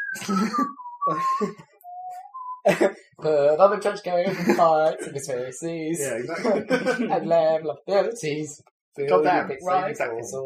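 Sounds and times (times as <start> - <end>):
man whistling a video game theme tune in the street: 0.0 - 2.7
speech: 0.1 - 1.7, 2.6 - 10.4
laughter: 0.2 - 1.6, 2.7 - 2.9, 4.2 - 5.3, 6.0 - 7.6.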